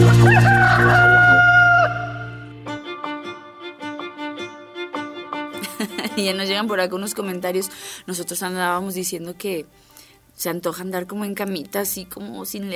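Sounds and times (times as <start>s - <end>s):
rooster crowing: 0.1s - 2.4s
laughter: 5.6s - 6.5s
speech: 6.3s - 12.7s.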